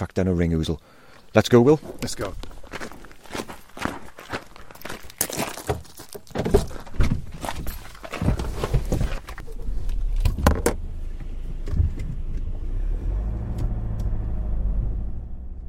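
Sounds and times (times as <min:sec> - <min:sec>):
speech: 0:00.2 - 0:02.8
footsteps: 0:01.1 - 0:09.4
car door and seat clicks and thumps: 0:05.7 - 0:10.8, 0:11.5 - 0:12.6
low rumble: 0:09.4 - 0:15.6.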